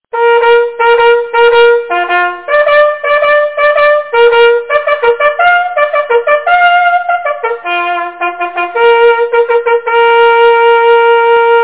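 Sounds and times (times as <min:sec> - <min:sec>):
hunting horn call: 0:00.1 - 0:11.6.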